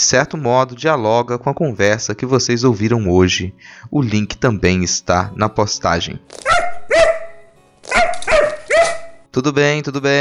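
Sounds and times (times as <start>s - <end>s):
speech: 0.0s - 6.5s, 9.3s - 10.2s
dog barking in sharp mid-pitched yelps: 6.4s - 9.2s.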